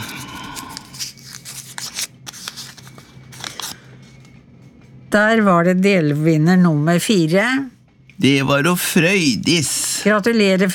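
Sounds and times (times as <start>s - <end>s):
crumpled paper slip rustling and crinkling as drawn by hand and unfolded: 0.1s - 4.2s
speech: 5.1s - 10.7s.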